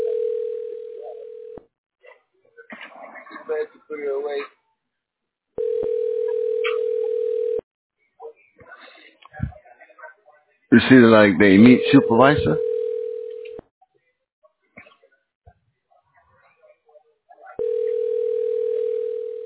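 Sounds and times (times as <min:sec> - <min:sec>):
steady flat telephone tone: 0:00.0 - 0:01.6, 0:05.6 - 0:07.6, 0:11.6 - 0:13.6, 0:17.6 - 0:19.4
speech: 0:03.5 - 0:04.6, 0:10.7 - 0:12.6.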